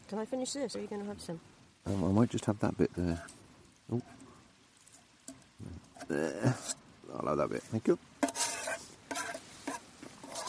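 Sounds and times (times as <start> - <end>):
speech: 0.1 - 4.2, 5.6 - 8.1
mixing bowl scraped clean after muesli: 8.2 - 10.4.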